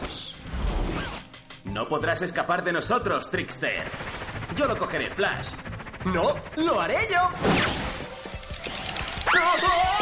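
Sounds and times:
speech: 1.8s - 7.8s
cartoon slip on a banana peel ending in a crash into a wall: 7.4s - 8.2s
noisy clatter: 8.2s - 10.0s.

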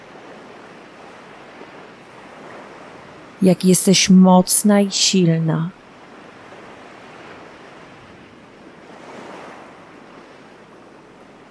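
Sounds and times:
ocean waves washing onto sand over a person's feet: 0.0s - 3.4s, 5.8s - 11.5s
speech: 3.4s - 5.8s.

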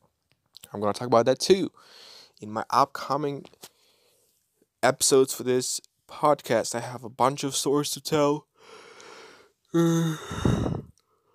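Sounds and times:
speech: 0.7s - 3.7s, 4.8s - 8.8s, 9.7s - 10.8s
person yawning: 9.8s - 10.9s.

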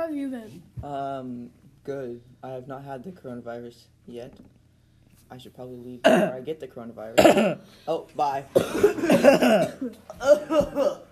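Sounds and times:
speech: 0.4s - 4.6s, 5.3s - 11.1s
person making exaggerated voiced coughing sounds: 6.0s - 6.4s, 7.2s - 7.7s, 8.5s - 11.1s.

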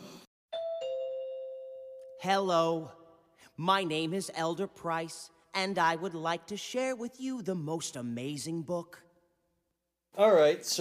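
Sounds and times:
two-tone doorbell chime: 0.5s - 2.2s
speech: 2.2s - 9.0s, 10.2s - 10.7s.

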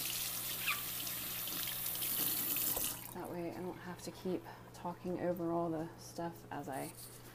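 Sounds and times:
tap water running into a baby bottle: 0.0s - 3.3s
speech: 3.2s - 7.2s.

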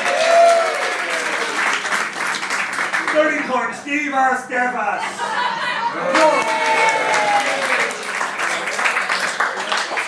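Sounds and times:
audience applause: 0.0s - 3.4s, 6.1s - 10.0s
speech: 3.2s - 7.7s
laughter: 5.0s - 6.8s.

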